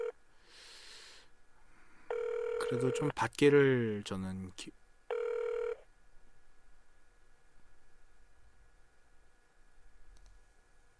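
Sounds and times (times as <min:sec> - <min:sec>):
telephone ringing: 0:02.1 - 0:03.1, 0:05.1 - 0:05.8
phone line hiss: 0:02.1 - 0:03.2, 0:05.1 - 0:05.8
speech: 0:02.7 - 0:04.8.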